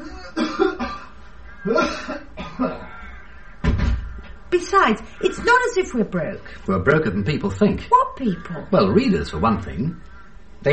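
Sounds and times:
man coughing in raspy bursts: 0:00.1 - 0:02.9
speech: 0:04.5 - 0:10.7.

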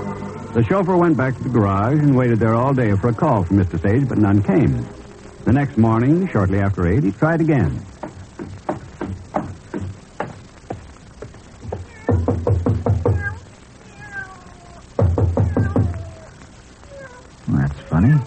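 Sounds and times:
speech: 0:00.5 - 0:08.5
cat meowing: 0:11.7 - 0:18.2.

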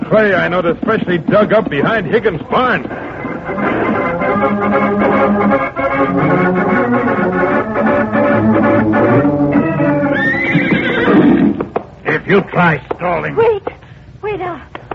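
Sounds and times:
speech: 0:00.1 - 0:03.7, 0:04.4 - 0:09.6, 0:12.3 - 0:13.6
loud music: 0:02.9 - 0:10.4
saddled horse whinnying: 0:09.6 - 0:11.6.

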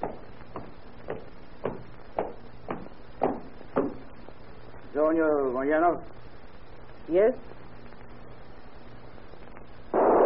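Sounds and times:
footsteps approaching a prison cell at a walking pace: 0:00.0 - 0:04.4
faint hiss: 0:00.0 - 0:10.2
speech: 0:05.1 - 0:06.3, 0:07.1 - 0:07.6.

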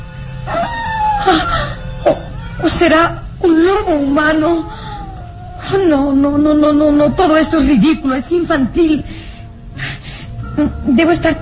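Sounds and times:
low steady hum: 0:00.0 - 0:11.4
mastiff dog howling: 0:00.4 - 0:08.7
speech: 0:02.6 - 0:04.8, 0:05.7 - 0:09.2, 0:10.6 - 0:11.4.

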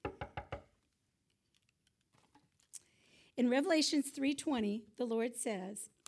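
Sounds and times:
knocking on a door: 0:00.0 - 0:00.7
speech: 0:03.4 - 0:06.0.

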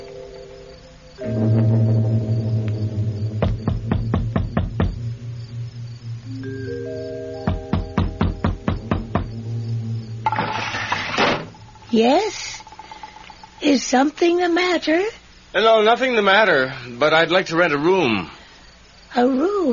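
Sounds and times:
steady low droning tone: 0:01.2 - 0:10.6
firm rapid knocking on a wooden door: 0:03.4 - 0:05.2, 0:07.4 - 0:09.4
speech: 0:12.0 - 0:12.4, 0:13.6 - 0:18.3, 0:19.1 - 0:19.7.

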